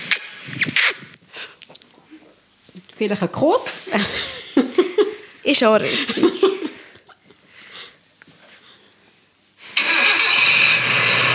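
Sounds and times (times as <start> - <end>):
speech: 3.0 - 4.3, 5.5 - 6.5
laughter: 3.9 - 5.2, 5.8 - 7.2
car engine starting and running: 9.6 - 11.3.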